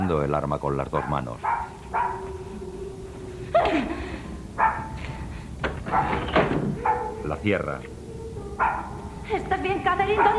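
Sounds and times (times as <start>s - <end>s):
low steady murmur: 0.0s - 10.3s
speech: 0.1s - 1.7s, 7.2s - 8.0s, 8.6s - 10.3s
dog barking: 1.0s - 2.4s, 4.6s - 5.0s, 5.8s - 7.2s, 8.6s - 9.0s, 10.1s - 10.3s.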